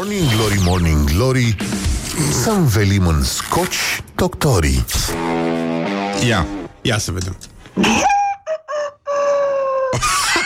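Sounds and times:
speech: 0.0 - 5.5, 6.2 - 8.1
human voice imitating a rooster crowing cock-a-doodle-doo: 7.9 - 10.0
laughter: 9.9 - 10.4.

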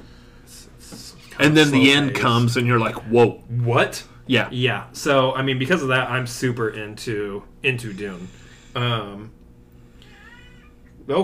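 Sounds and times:
speech: 1.4 - 9.4, 11.1 - 11.2
loud drawn-out cat meow: 10.0 - 10.8.

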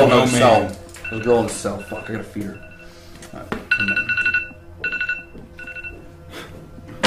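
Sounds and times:
mobile phone ringtone: 0.0 - 3.1, 3.7 - 6.1
speech: 0.1 - 2.7, 3.3 - 4.3.

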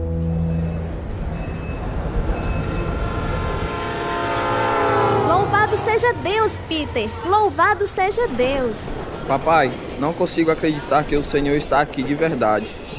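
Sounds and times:
train rolling along the rails: 0.1 - 12.9
train horn: 2.3 - 8.4
speech: 6.7 - 12.9.

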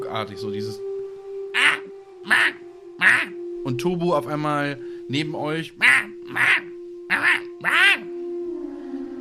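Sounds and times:
speech: 0.0 - 0.9, 2.2 - 8.0
voice imitating harsh raven-like caws: 1.6 - 3.4, 5.8 - 8.1.

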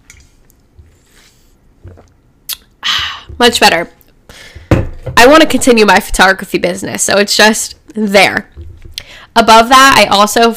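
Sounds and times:
person sipping water: 0.2 - 3.3
swallowing water: 1.8 - 2.7
sharp mouth click: 2.5 - 2.7
speech: 3.4 - 4.0, 5.2 - 8.6, 9.4 - 10.5.

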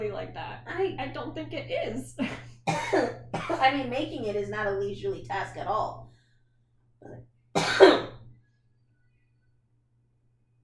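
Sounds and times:
speech: 0.0 - 6.1
throat clearing to bring up phlegm: 7.0 - 8.2.

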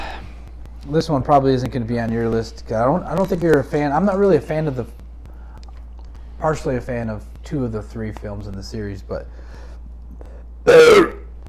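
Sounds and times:
speech: 0.8 - 5.0, 6.4 - 9.6, 10.6 - 11.1
human burp: 10.6 - 11.3.

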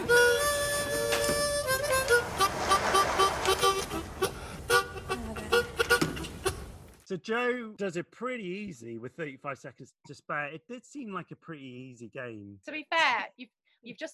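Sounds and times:
harmonica imitating train whistle and chugging: 0.0 - 6.7
speech: 7.1 - 14.1.

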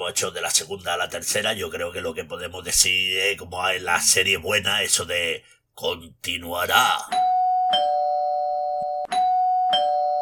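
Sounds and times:
speech: 0.0 - 7.3
electronic doorbell ringing: 7.1 - 10.2.

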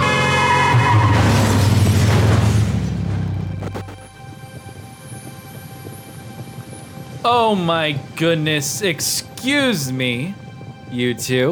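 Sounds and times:
car skidding: 0.0 - 3.8
car engine roaring: 0.0 - 4.6
speech: 7.3 - 11.5.

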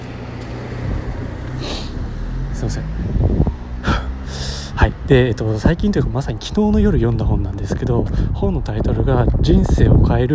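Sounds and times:
car passing by with engine and tire rumble: 0.0 - 5.1
speech: 2.6 - 3.2, 4.8 - 10.3.

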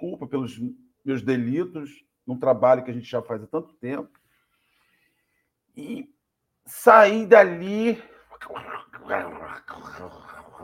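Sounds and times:
speech: 0.3 - 4.2, 5.8 - 10.6
voice imitating a dog growling: 8.3 - 10.6.

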